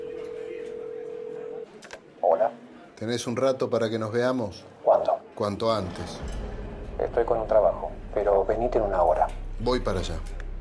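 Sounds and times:
telephone dial tone from a public phone handset in a bar: 0.0s - 1.7s
faint murmur in a bar: 0.0s - 10.5s
speech: 2.4s - 4.8s, 5.4s - 6.4s, 7.0s - 10.4s.

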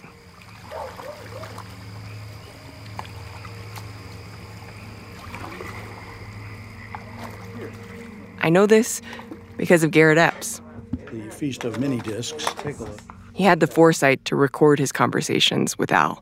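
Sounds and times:
oars paddling through the water of the Williamson River: 0.0s - 13.2s
continuous low hum: 0.0s - 16.2s
frogs croaking outdoors: 0.0s - 16.2s
speech: 8.5s - 10.6s, 11.4s - 16.2s.

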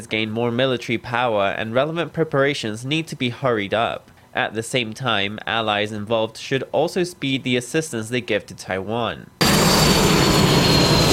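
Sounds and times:
speech: 0.0s - 10.1s
jet engine roar of a Taiwanese T-5 Brave Eagle advanced jet trainer: 9.4s - 11.1s.

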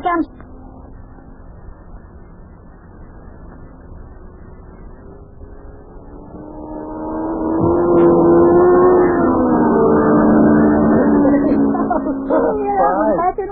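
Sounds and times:
racing car engine roaring past on a speedway track: 0.2s - 13.4s.

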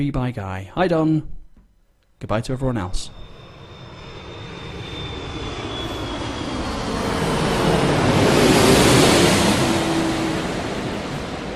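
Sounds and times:
speech: 0.0s - 1.4s, 2.2s - 3.2s
low aircraft passing overhead: 3.0s - 11.5s.

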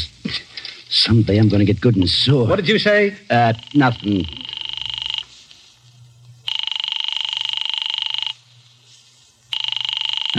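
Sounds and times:
speech: 1.0s - 4.4s
office telephone ringing unanswered: 3.3s - 5.4s, 6.4s - 8.4s, 9.5s - 10.3s.

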